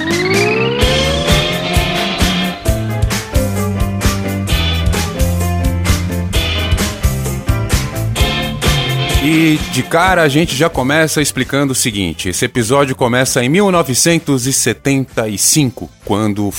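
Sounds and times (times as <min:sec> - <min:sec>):
car tires squealing: 0:00.0 - 0:03.5
car engine revving and speeding off: 0:00.0 - 0:09.7
steady driving rhythmic beat: 0:00.0 - 0:11.1
speech: 0:09.3 - 0:16.5.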